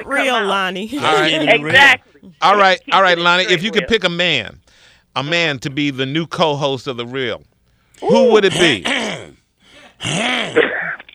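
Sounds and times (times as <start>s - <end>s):
speech: 0.0s - 9.3s, 10.0s - 10.8s
man clearing his throat: 8.5s - 9.4s, 10.0s - 11.1s.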